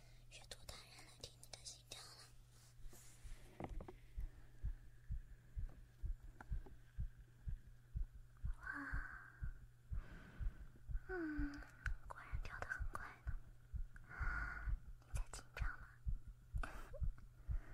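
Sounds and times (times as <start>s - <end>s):
breathy whispering: 0.0s - 2.4s, 8.5s - 17.7s
low constant hum: 0.0s - 17.7s
soft rustling: 1.9s - 4.8s
person's heartbeat thumping: 3.2s - 17.7s.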